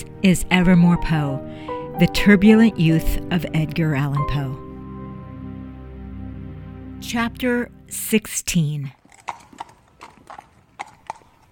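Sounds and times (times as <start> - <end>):
speech: 0.0 - 4.6, 7.0 - 9.0
horse hooves clip-clopping: 9.0 - 11.5.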